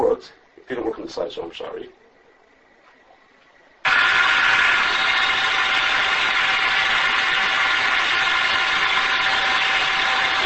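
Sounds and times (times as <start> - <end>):
faint steady hum: 0.0 - 10.4
speech: 0.2 - 2.0
air blower blowing down onto chilled product in a food processing line: 3.9 - 10.4.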